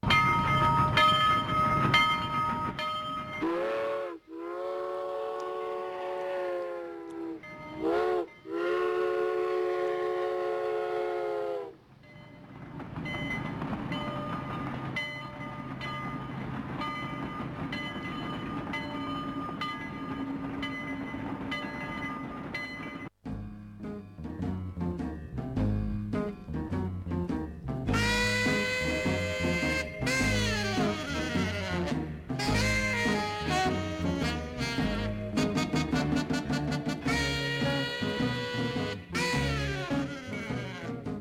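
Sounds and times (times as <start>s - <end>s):
steam train rumbling along with rolling clatter: 0.0s - 41.1s
steam train whistle blast: 0.1s - 11.8s, 27.9s - 41.1s.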